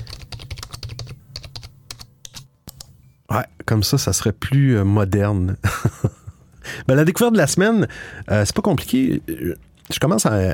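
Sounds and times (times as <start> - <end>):
rapid computer keyboard typing: 0.0 - 3.0
speech: 3.4 - 6.0, 6.8 - 10.5
laughter: 5.6 - 6.5.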